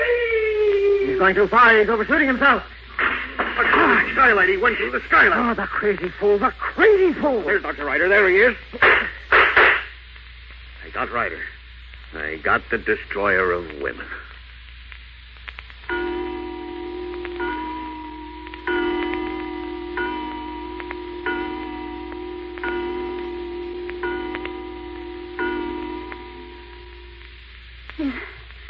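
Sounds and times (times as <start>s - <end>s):
soft hiss: 0.0s - 28.6s
speech: 1.2s - 2.7s, 3.6s - 9.1s, 11.0s - 11.5s, 12.1s - 14.3s
clock striking: 15.9s - 27.5s.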